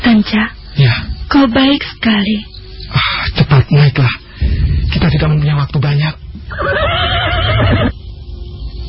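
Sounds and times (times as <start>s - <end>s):
speech: 0.2s - 2.5s, 3.7s - 7.0s, 7.6s - 8.0s
horse neighing: 6.5s - 7.9s.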